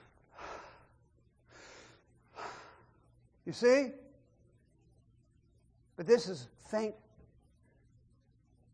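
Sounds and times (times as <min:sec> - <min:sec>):
forceful breathing demonstrated by speaker: 0:00.0 - 0:03.1
speech: 0:03.4 - 0:04.0, 0:06.0 - 0:07.0.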